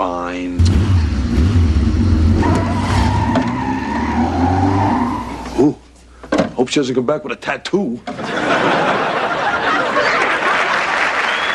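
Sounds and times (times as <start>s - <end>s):
motorcycle with a luggage rack revving and driving off: 0.6s - 5.4s
speech: 6.7s - 8.9s
laughter: 8.2s - 11.3s.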